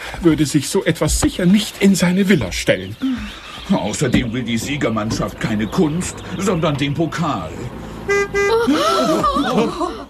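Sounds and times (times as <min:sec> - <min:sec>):
speech: 0:00.2 - 0:10.0
car horn of a car driving through a zoo gate: 0:07.9 - 0:09.5
laughter: 0:08.4 - 0:10.0.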